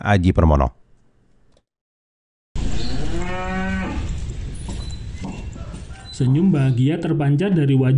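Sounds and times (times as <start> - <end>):
speech: 0.0 - 0.8, 6.2 - 7.9
outdoor noise: 2.6 - 7.9
Ongole crossbreed cow mooing: 2.7 - 4.2.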